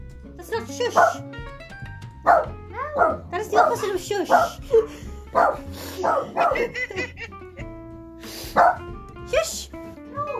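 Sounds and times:
speech: 0:00.4 - 0:01.4, 0:02.2 - 0:07.3, 0:08.5 - 0:09.6
dog barking and yipping in a studio: 0:00.9 - 0:01.2, 0:02.2 - 0:06.8, 0:08.6 - 0:08.9
laughter: 0:06.0 - 0:07.8.

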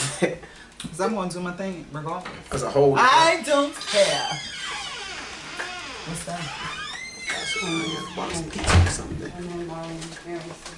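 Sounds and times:
speech: 0:00.2 - 0:04.6, 0:06.0 - 0:06.8, 0:07.5 - 0:10.7
door opening and shutting with a solid thump: 0:03.8 - 0:09.0.

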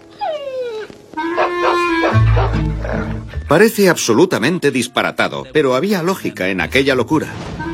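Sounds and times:
dogs barking and whining: 0:00.0 - 0:03.3
drawn-out pulsing howl-like cry of a dog: 0:00.1 - 0:03.2
speech: 0:02.6 - 0:07.5.

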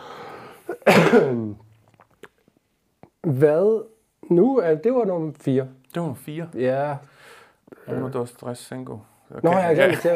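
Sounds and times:
person coughing with a voiced rasp: 0:00.7 - 0:01.6
speech: 0:00.8 - 0:01.6, 0:03.2 - 0:07.1, 0:07.9 - 0:10.1.

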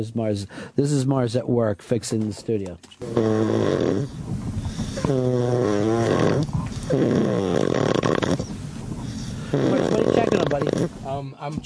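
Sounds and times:
speech: 0:00.0 - 0:08.4, 0:09.5 - 0:11.6
loud rattling droning snoring: 0:03.0 - 0:11.1.

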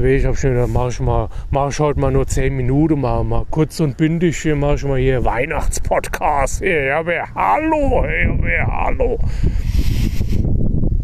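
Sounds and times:
speech: 0:00.0 - 0:10.4
wind gusts buffeting a microphone outdoors at a forest edge: 0:00.0 - 0:11.0
breathy hiss of moving air: 0:01.2 - 0:01.6, 0:09.2 - 0:10.6.

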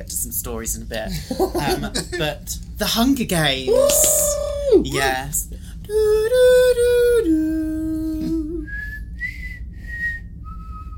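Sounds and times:
speech: 0:00.0 - 0:07.4
soft hum: 0:00.0 - 0:10.9
laughter: 0:01.1 - 0:02.3
whistled tune of four sustained notes: 0:08.6 - 0:10.9.

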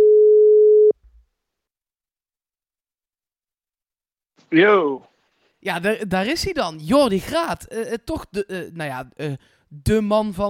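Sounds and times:
telephone ringback tone while calling someone: 0:00.0 - 0:00.9
speech: 0:04.5 - 0:10.4.

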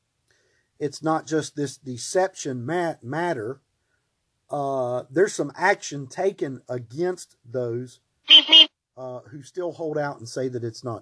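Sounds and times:
speech: 0:00.8 - 0:03.6, 0:04.5 - 0:10.9
phone notification electronic beeps: 0:08.3 - 0:08.7.

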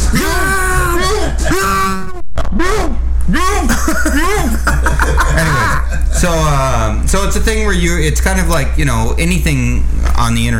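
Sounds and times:
voice imitating a muffled scream through a sock stuffed in the mouth: 0:00.0 - 0:03.0
speech: 0:00.1 - 0:00.4, 0:06.2 - 0:10.5
laughter: 0:03.7 - 0:06.6.

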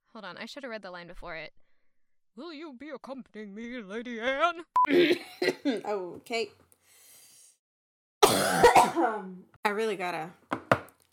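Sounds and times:
speech: 0:00.2 - 0:01.6, 0:02.4 - 0:06.6, 0:08.4 - 0:10.5
person coughing harshly: 0:08.2 - 0:09.3.

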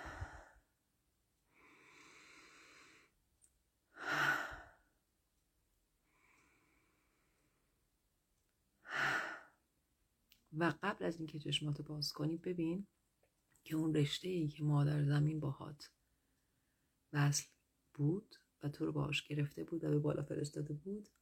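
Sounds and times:
slow deep breaths during a guided meditation: 0:00.0 - 0:00.8, 0:01.4 - 0:03.2, 0:03.9 - 0:05.0, 0:06.0 - 0:07.8, 0:08.8 - 0:09.7
speech: 0:10.6 - 0:13.0, 0:13.7 - 0:16.0, 0:17.1 - 0:21.2.

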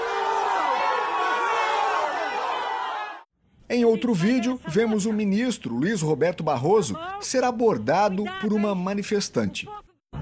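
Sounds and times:
large crowd of protesters booing: 0:00.0 - 0:03.3
speech: 0:03.7 - 0:09.8.

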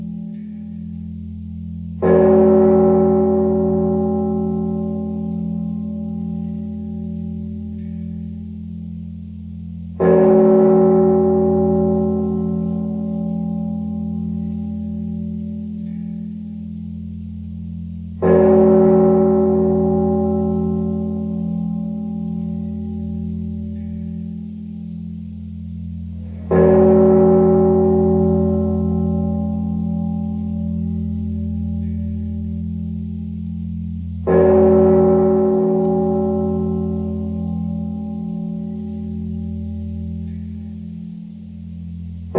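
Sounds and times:
steady low hum: 0:00.0 - 0:42.3
clock tower bell striking: 0:02.0 - 0:08.5, 0:10.0 - 0:16.6, 0:18.2 - 0:24.7, 0:26.4 - 0:33.0, 0:34.2 - 0:40.9.

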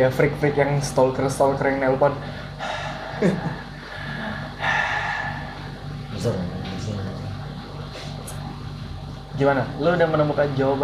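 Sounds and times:
speech: 0:00.0 - 0:02.4, 0:03.2 - 0:03.6, 0:06.2 - 0:06.6, 0:09.4 - 0:10.8
voice imitating heavy mask breathing: 0:02.3 - 0:06.0.

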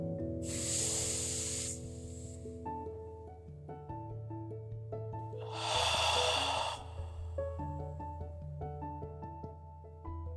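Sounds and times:
soft steady music: 0:00.0 - 0:10.3
slow deep exhales during a guided breathing exercise: 0:00.4 - 0:02.4, 0:05.4 - 0:07.8.

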